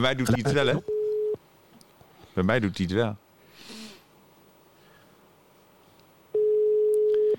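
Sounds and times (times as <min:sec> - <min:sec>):
speech: 0:00.0 - 0:00.9, 0:02.4 - 0:03.8
quiet noise: 0:00.0 - 0:07.3
phone dialing tone from calling a mobile phone: 0:00.9 - 0:01.4, 0:06.4 - 0:07.3.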